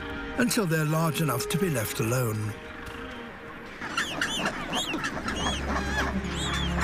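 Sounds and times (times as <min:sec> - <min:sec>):
speech: 0:00.4 - 0:02.7
hungry bird chicks crying on an Antarctic island: 0:03.2 - 0:06.8.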